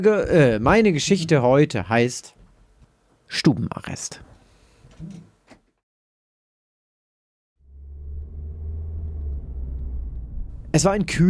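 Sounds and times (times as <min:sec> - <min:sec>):
speech: 0:00.0 - 0:02.4, 0:03.3 - 0:04.3, 0:05.0 - 0:05.3, 0:10.8 - 0:11.2
car engine rumble on a wet country road: 0:07.6 - 0:11.2.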